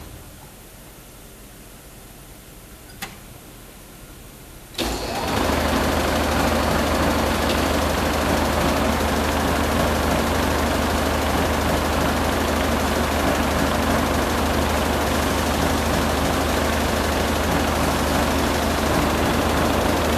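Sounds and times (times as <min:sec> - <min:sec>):
manufacturing machine running: 0:04.8 - 0:20.1.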